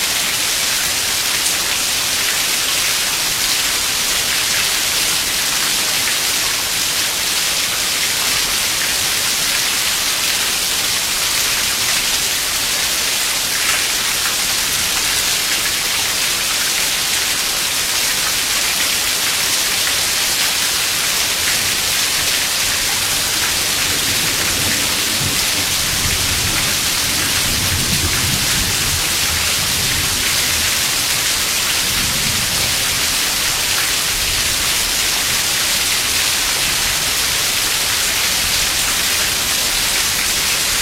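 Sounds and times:
rain falling recorded from under the eaves: 0.0s - 40.8s.

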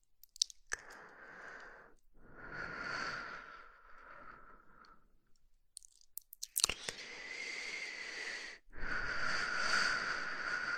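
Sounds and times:
small clicks and mouth sounds: 0.2s - 1.1s, 5.8s - 7.0s
slow breathing: 0.8s - 5.1s, 6.8s - 10.7s.

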